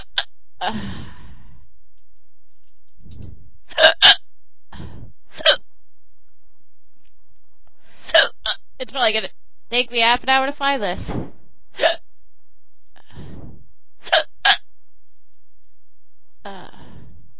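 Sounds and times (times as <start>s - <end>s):
speech: 0.6s - 1.2s, 8.8s - 11.2s
breathy sighs: 0.6s - 1.7s, 13.0s - 13.5s, 16.5s - 17.2s
hiccups: 3.7s - 4.3s, 8.1s - 8.6s, 11.8s - 12.0s, 14.0s - 14.7s.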